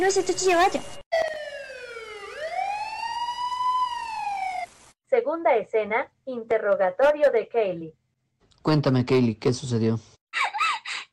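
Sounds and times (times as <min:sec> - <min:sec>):
speech: 0:00.0 - 0:01.0, 0:05.3 - 0:08.0, 0:08.6 - 0:10.6
police siren wailing: 0:01.1 - 0:04.8.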